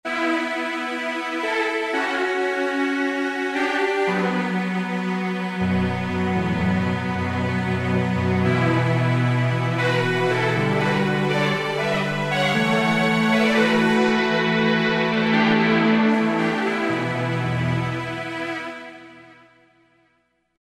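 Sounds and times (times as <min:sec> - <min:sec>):
layered string section playing: 0:00.1 - 0:19.4.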